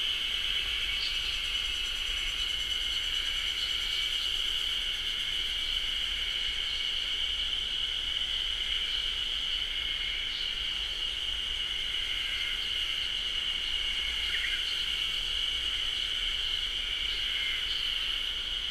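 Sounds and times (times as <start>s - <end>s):
Ezo haru cicadas singing as a massed chorus in a beech forest in Japan: 0.0s - 18.6s.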